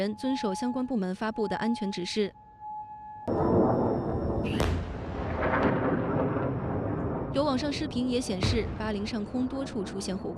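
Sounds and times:
speech: 0:00.0 - 0:02.4, 0:04.4 - 0:04.8, 0:07.4 - 0:10.3
explosions of air defense missile interceptions: 0:03.3 - 0:10.3
long rolling rumble: 0:03.3 - 0:10.3.

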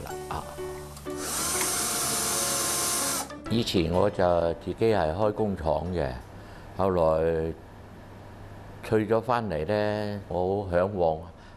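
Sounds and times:
speech: 0:00.4 - 0:01.3, 0:03.5 - 0:07.6, 0:08.8 - 0:11.3
power drill boring small holes into the back of a wooden door: 0:01.0 - 0:03.3.

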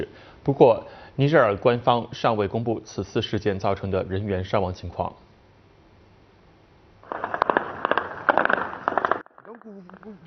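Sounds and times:
speech: 0:00.0 - 0:05.2, 0:09.7 - 0:10.2
dense rapid bursts of sharp gunfire: 0:07.0 - 0:09.2
explosions: 0:07.0 - 0:09.3.

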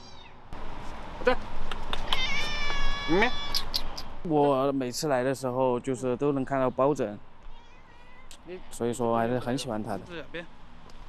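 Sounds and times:
cat meowing outside a door: 0:00.0 - 0:00.4, 0:02.0 - 0:03.7, 0:07.4 - 0:08.7
speech: 0:01.2 - 0:01.5, 0:03.1 - 0:03.4, 0:04.2 - 0:07.3, 0:08.5 - 0:10.6.

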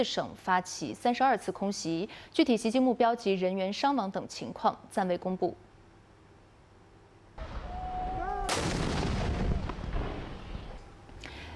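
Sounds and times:
speech: 0:00.0 - 0:05.6
artillery shells fired by government forces in Taiz province, Yemen: 0:07.4 - 0:10.8.

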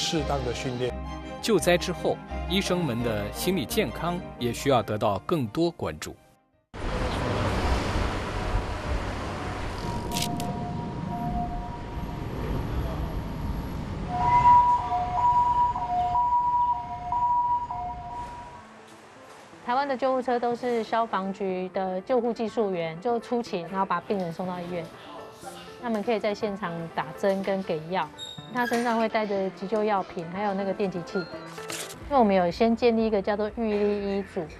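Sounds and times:
speech: 0:00.1 - 0:00.9, 0:01.5 - 0:06.2, 0:20.0 - 0:34.5
rumbling street noise: 0:06.8 - 0:18.8
ambulance siren wailing in a two-tone pattern: 0:09.7 - 0:18.6.

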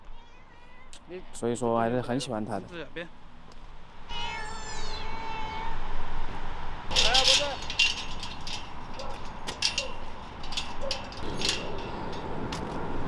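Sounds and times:
rescued ragdoll cat meowing: 0:00.0 - 0:01.0, 0:04.1 - 0:05.9
speech: 0:01.0 - 0:03.2
clicks and light rattling: 0:06.9 - 0:12.9.

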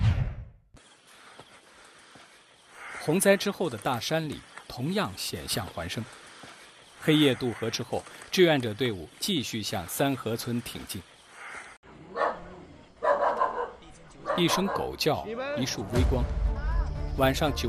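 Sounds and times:
noise: 0:00.8 - 0:15.9
speech: 0:03.1 - 0:06.2, 0:07.0 - 0:11.1, 0:14.4 - 0:16.4, 0:17.2 - 0:17.6
dog barking: 0:12.0 - 0:15.0.

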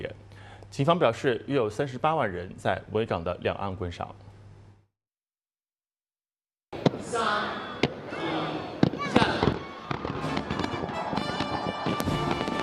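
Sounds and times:
speech: 0:00.7 - 0:04.3
fireworks booming over the harbour: 0:06.8 - 0:07.2, 0:08.8 - 0:12.6
constant murmur of a large crowd: 0:06.8 - 0:12.6.

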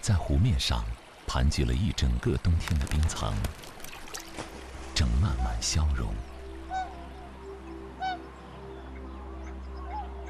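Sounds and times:
speech: 0:00.0 - 0:03.7, 0:05.0 - 0:06.3
tundra swans and migratory waterfowl honking at Wuliangsuhai lake wetland: 0:05.2 - 0:10.2.

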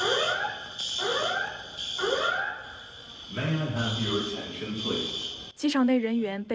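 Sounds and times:
airport terminal alarm wailing after an explosion in Riyadh: 0:00.0 - 0:05.0
speech: 0:03.4 - 0:06.5.

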